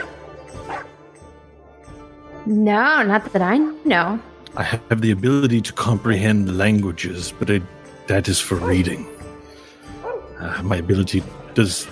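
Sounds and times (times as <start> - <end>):
dog barking and yipping: 0.0 - 1.0, 10.0 - 10.3
speech: 2.5 - 9.2, 10.4 - 11.9.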